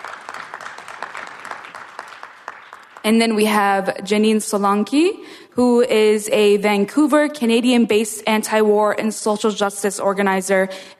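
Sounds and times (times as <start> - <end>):
applause, many hands clapping in a steady dense patter: 0.0 - 3.2
speech: 3.0 - 10.9.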